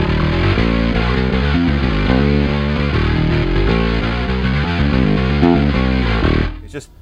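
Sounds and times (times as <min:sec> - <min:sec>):
loud gritty distorted bass guitar riff through a distortion plugin: 0:00.0 - 0:06.8.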